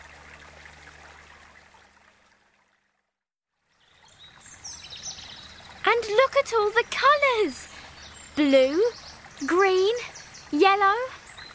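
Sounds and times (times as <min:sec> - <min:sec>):
water trickling from melted ice: 0:00.0 - 0:11.5
bird chirps: 0:03.8 - 0:05.9, 0:07.2 - 0:11.5
speech: 0:05.9 - 0:07.7, 0:08.4 - 0:11.2.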